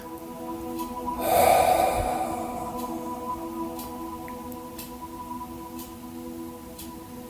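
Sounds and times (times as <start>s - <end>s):
deep breathy exhale during a guided breathing exercise: 1.2s - 3.8s.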